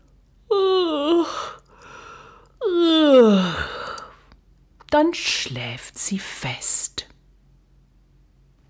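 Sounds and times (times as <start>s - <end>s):
voice imitating a little mouse yawning: 0.5s - 4.1s
speech: 5.1s - 6.7s.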